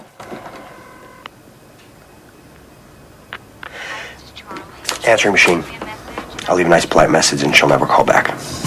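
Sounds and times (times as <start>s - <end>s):
sustained electronic phone keypad tone: 0.4s - 1.3s
speech: 5.0s - 5.8s, 6.5s - 8.5s.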